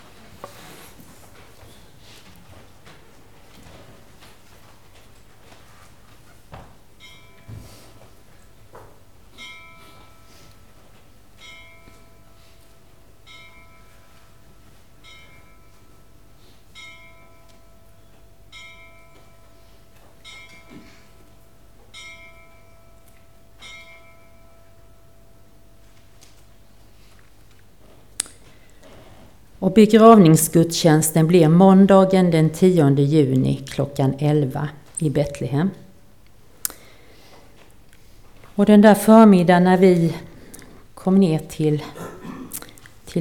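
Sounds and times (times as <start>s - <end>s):
small church bell tolling outdoors: 7.0s - 8.2s, 9.3s - 26.2s
speech: 29.6s - 35.8s, 38.6s - 40.3s, 41.0s - 42.0s.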